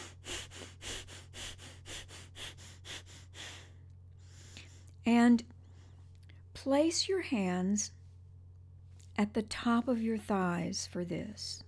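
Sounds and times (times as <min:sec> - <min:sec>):
very quick breathing in and out through the nose: 0:00.0 - 0:04.9
steady low hum: 0:00.0 - 0:11.6
speech: 0:05.0 - 0:05.6, 0:06.6 - 0:08.0, 0:09.2 - 0:11.6.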